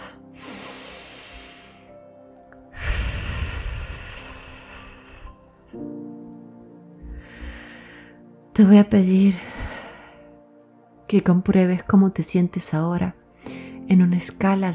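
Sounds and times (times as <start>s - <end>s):
slow deep breath in through nose and out through mouth: 0.0s - 2.0s, 2.7s - 5.6s, 7.0s - 8.4s, 9.3s - 10.4s
soft sustained music: 0.0s - 14.7s
speech: 5.7s - 6.0s, 8.6s - 9.5s, 11.1s - 13.2s, 13.9s - 14.7s.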